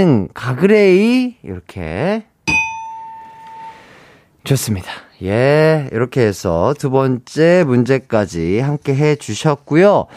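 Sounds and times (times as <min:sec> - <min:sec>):
speech: 0:00.0 - 0:02.3, 0:04.4 - 0:10.1
bright bell-like correct-answer chime: 0:02.5 - 0:03.9.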